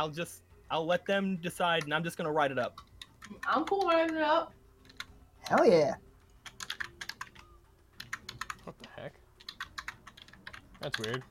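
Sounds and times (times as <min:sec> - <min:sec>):
speech: 0:00.0 - 0:04.6, 0:05.4 - 0:06.1, 0:08.7 - 0:09.2, 0:10.8 - 0:11.2
computer keyboard and mouse clicks: 0:02.7 - 0:04.2, 0:06.4 - 0:11.2.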